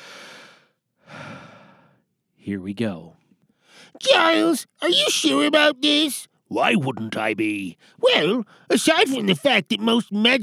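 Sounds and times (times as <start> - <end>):
deep breath drawn in audibly: 0.0 - 2.0, 3.6 - 4.0
long full breathy exhale: 0.0 - 2.0
speech: 2.5 - 3.2, 3.8 - 10.4.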